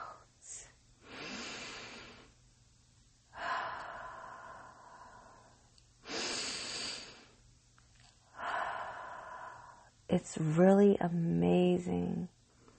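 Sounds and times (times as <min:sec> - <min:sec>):
slow deep breathing in and out: 0:01.0 - 0:02.4, 0:03.3 - 0:07.4, 0:08.2 - 0:10.0
speech: 0:10.2 - 0:12.4.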